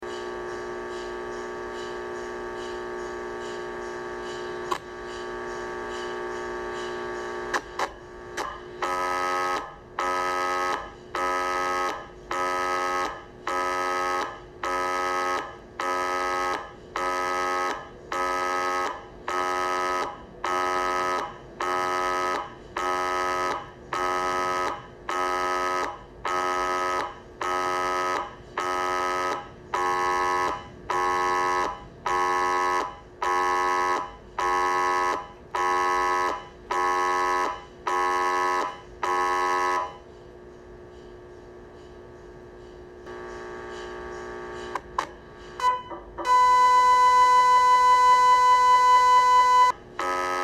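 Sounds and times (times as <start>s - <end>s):
MRI scanner sounds: 0.0s - 50.4s.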